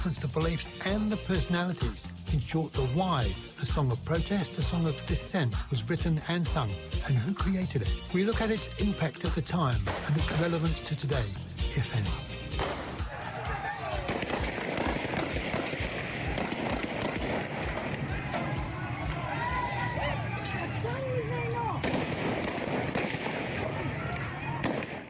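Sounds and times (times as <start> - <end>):
speech: 0.0 - 12.4
sharp bangs at a peaceful women's rights demonstration in Afghanistan: 9.8 - 10.7, 12.5 - 13.1, 14.0 - 18.6, 21.8 - 23.8
din of crowd voices and movement at a women's rights demonstration in Afghanistan: 12.3 - 25.0.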